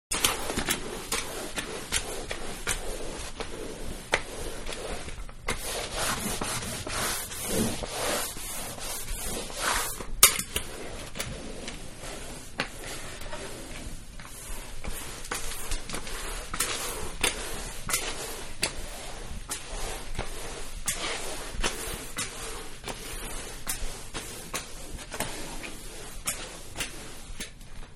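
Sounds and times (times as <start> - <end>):
mopping floor: 0.1 - 27.9.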